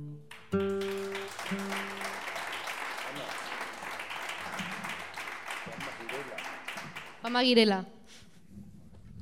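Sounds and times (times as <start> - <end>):
crowd applauding: 0.3 - 7.6
speech: 7.3 - 8.0.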